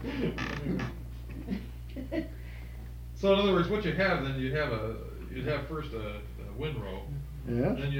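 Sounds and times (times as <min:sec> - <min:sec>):
speech: 0:00.1 - 0:01.6, 0:03.2 - 0:07.9
door creaking open with groaning hinge: 0:00.3 - 0:01.0.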